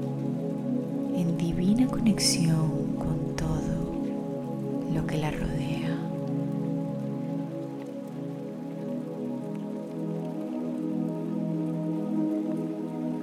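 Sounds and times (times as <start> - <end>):
rain falling: 0.0 - 13.2
speech: 1.9 - 2.9, 5.0 - 6.1.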